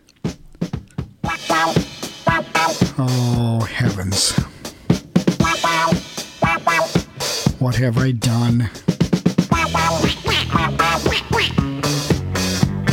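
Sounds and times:
bouncy 1976 disco track: 0:01.2 - 0:12.9
squawky quacking duck-like voice: 0:01.3 - 0:03.3, 0:05.4 - 0:07.5, 0:09.5 - 0:12.2
person exclaiming: 0:01.6 - 0:04.5, 0:09.5 - 0:11.6
speech: 0:02.6 - 0:04.5, 0:07.6 - 0:08.9.

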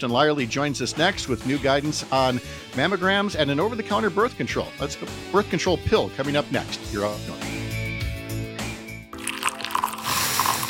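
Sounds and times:
speech: 0:00.0 - 0:07.6
coffee pouring into a cup: 0:09.2 - 0:10.6.

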